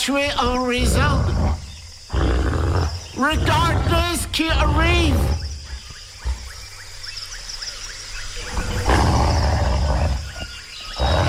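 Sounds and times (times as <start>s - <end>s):
speech: 0.0s - 5.4s
large wolf roaring: 0.4s - 6.6s, 8.5s - 11.2s.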